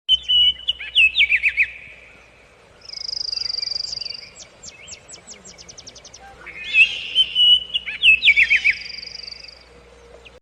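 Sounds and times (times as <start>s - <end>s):
birds in a forest: 0.1s - 10.4s
monkeys crossing a river in a forest: 5.1s - 10.4s.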